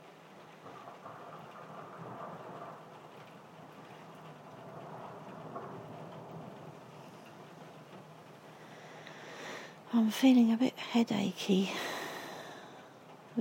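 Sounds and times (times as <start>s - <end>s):
low roll of thunder rumbling: 0.0s - 13.3s
steady rain pattering on a skylight: 0.0s - 13.3s
speech: 9.9s - 11.9s.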